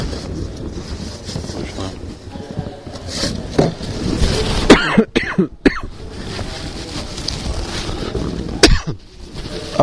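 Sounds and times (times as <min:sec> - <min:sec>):
steady windy rumble: 0:00.0 - 0:09.8
person clearing throat with something stuck in it: 0:04.6 - 0:05.9, 0:08.6 - 0:09.0
person coughing with something stuck in their throat: 0:04.7 - 0:05.9, 0:08.6 - 0:09.0.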